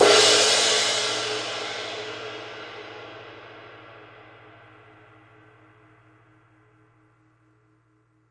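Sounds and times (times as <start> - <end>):
big ride crash cymbal: 0.0 - 3.2.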